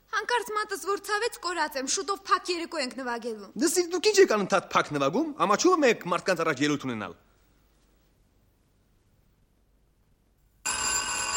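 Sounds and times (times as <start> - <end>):
speech: 0.2 - 7.3
telephone ringing: 10.6 - 11.3.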